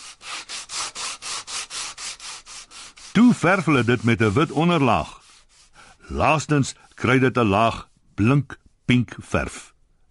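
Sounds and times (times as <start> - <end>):
sandpaper sanding a wooden shelf: 0.0 - 8.0
speech: 3.3 - 5.2, 6.1 - 9.7.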